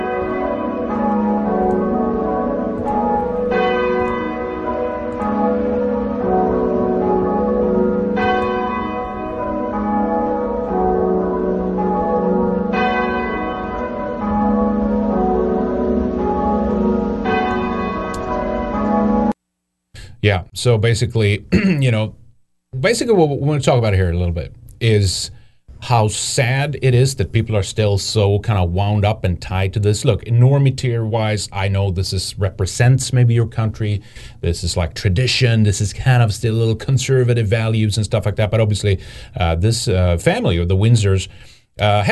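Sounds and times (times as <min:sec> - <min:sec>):
church bells in England ringing in full peal: 0:00.0 - 0:19.4
speech: 0:20.3 - 0:22.2, 0:22.8 - 0:42.1.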